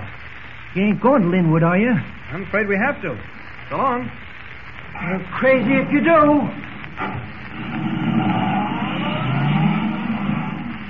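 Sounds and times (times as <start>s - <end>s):
speech: 0.7s - 4.2s, 4.9s - 7.8s
car engine accelerating at full throttle: 7.5s - 10.8s.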